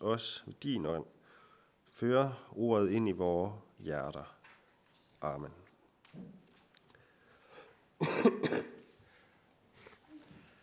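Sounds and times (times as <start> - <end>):
speech: 0.0 - 1.2, 2.0 - 4.4, 5.2 - 6.4
person coughing: 8.0 - 8.9.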